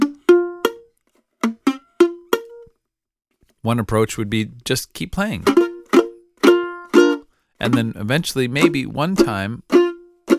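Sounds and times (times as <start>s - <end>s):
badly played B flat chord guitar strums, muted and buzzy: 0.0s - 2.7s, 5.3s - 10.3s
speech: 3.6s - 5.6s, 7.6s - 9.8s.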